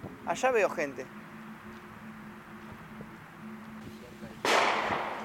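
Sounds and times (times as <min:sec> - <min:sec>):
speech: 0:00.3 - 0:01.2
gunshot with long echo: 0:04.4 - 0:05.2.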